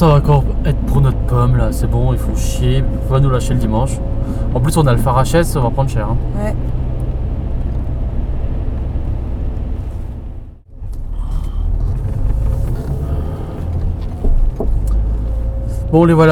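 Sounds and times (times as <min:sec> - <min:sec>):
speech: 0:00.0 - 0:06.8, 0:15.9 - 0:16.2
family car engine and tyre rumble driving along a road: 0:00.0 - 0:16.2.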